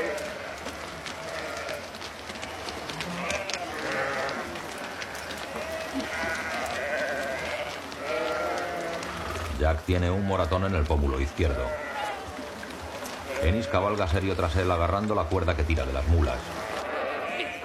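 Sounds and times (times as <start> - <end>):
flock of sheep bleating entering a pen in a meadow: 0.0 - 17.6
shuffling of sheep: 0.0 - 17.6
speech: 9.6 - 11.8, 13.4 - 16.6.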